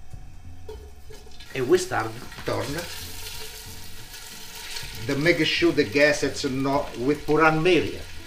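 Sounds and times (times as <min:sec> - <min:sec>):
sausage sizzling and crackling in a hot pot with oil: 0:00.5 - 0:08.2
faint stirring scrapes in a pot: 0:00.7 - 0:05.5
speech: 0:01.6 - 0:03.0, 0:05.1 - 0:08.1.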